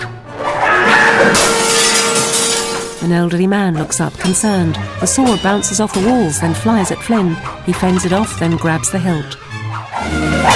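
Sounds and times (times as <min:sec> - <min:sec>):
glass case shattering: 0:00.4 - 0:03.0
speech: 0:03.0 - 0:10.5.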